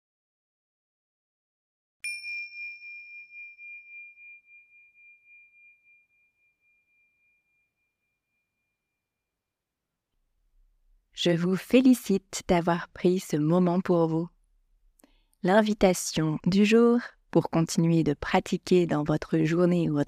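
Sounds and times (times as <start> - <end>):
meditation bell ringing: 2.0 - 9.2
speech: 11.2 - 14.4, 15.4 - 20.0.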